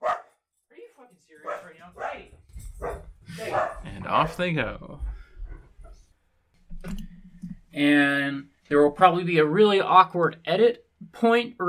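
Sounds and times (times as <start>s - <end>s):
dog barking and yelping: 0.0s - 0.4s, 1.4s - 4.2s
speech: 1.2s - 5.0s, 7.8s - 11.6s.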